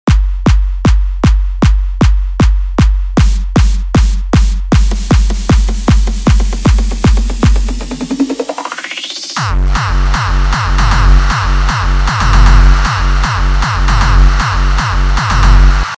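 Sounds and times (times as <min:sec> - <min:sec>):
hardstyle clap sample: 0:00.0 - 0:15.9
hardstyle raw kick drum: 0:00.0 - 0:15.9.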